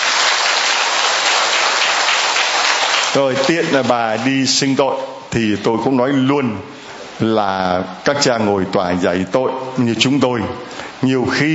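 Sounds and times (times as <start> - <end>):
large crowd clapping: 0.0 - 4.3
speech: 3.1 - 11.5.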